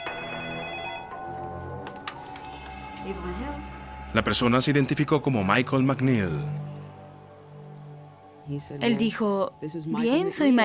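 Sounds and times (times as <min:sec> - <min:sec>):
telephone ringing: 0:00.0 - 0:01.8
speech: 0:03.1 - 0:06.7, 0:08.5 - 0:10.6.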